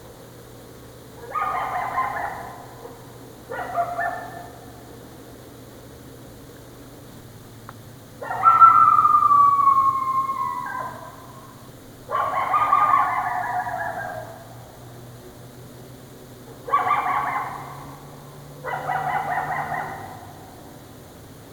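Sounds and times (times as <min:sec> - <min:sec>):
coyote long falling howl: 0:01.2 - 0:04.6, 0:08.2 - 0:14.6, 0:16.6 - 0:20.7.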